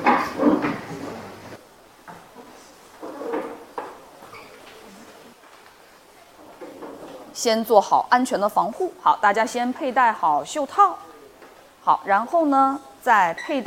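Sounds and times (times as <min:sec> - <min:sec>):
drawers being opened: 0:00.1 - 0:01.3
speech: 0:07.4 - 0:11.1, 0:11.9 - 0:13.6.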